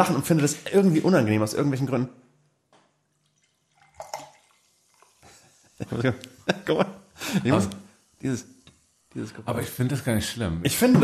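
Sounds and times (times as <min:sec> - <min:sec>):
speech: 0:00.0 - 0:02.2, 0:05.8 - 0:08.6, 0:09.2 - 0:11.0
carbonated apple spritzer poured into a glass: 0:03.1 - 0:09.5
soft hiss of bubbles: 0:03.3 - 0:09.9.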